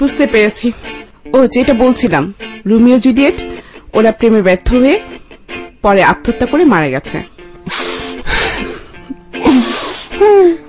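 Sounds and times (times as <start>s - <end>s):
speech: 0.0s - 5.1s, 5.8s - 8.0s, 9.4s - 10.6s
man sobbing and wailing: 7.6s - 10.6s.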